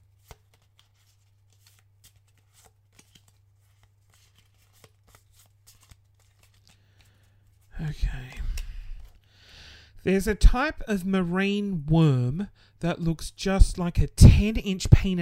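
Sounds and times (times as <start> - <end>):
deck of cards being shuffled: 0.1 - 9.3
speech: 7.8 - 8.6, 10.0 - 15.2.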